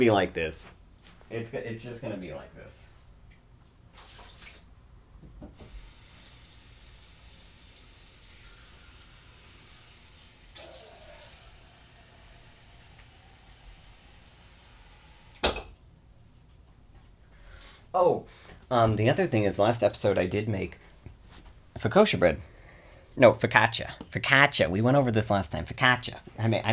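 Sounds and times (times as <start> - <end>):
speech: 0.0 - 2.9, 18.0 - 20.9, 21.8 - 22.5, 23.2 - 26.7
tap water running into a glass: 5.4 - 15.8.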